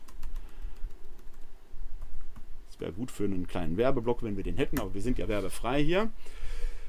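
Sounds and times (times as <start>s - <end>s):
typing on a computer keyboard: 0.0s - 1.4s
speech: 2.8s - 6.5s.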